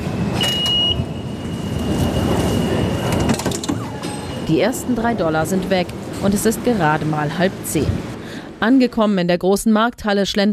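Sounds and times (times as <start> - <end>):
high whine: 0.0 - 8.1
moving subway train rumbling: 0.0 - 9.9
speech: 4.5 - 10.5.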